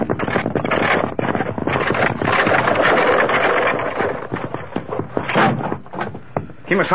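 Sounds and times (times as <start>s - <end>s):
runaway wagon wheel rolling and clattering: 0.0s - 6.9s
speech: 6.7s - 6.9s.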